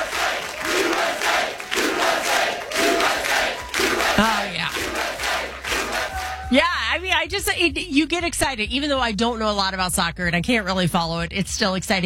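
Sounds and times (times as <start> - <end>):
soccer crowd chanting in unison: 0.0 - 6.6
speech: 6.5 - 12.0.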